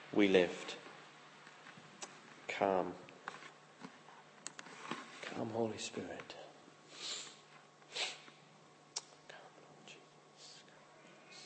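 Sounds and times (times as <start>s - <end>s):
faint steady hum: 0.0s - 11.4s
speech: 0.1s - 0.8s, 2.6s - 3.0s, 5.4s - 6.4s
soft sneeze: 7.0s - 8.3s.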